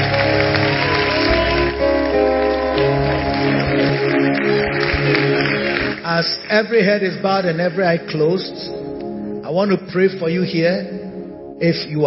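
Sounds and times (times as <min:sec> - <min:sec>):
audience clapping: 0:00.0 - 0:07.5
speech: 0:06.2 - 0:08.8, 0:09.5 - 0:11.0, 0:11.6 - 0:12.0.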